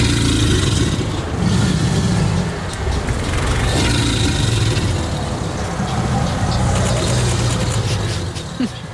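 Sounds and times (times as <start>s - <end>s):
alligator bellowing in a deep throaty rumble: 0.0s - 8.3s.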